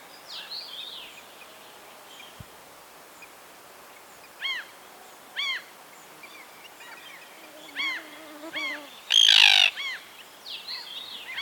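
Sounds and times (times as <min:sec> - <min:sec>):
common tern sharp arched calls: 0:06.8 - 0:10.0
faint common tern calls: 0:07.7 - 0:10.0.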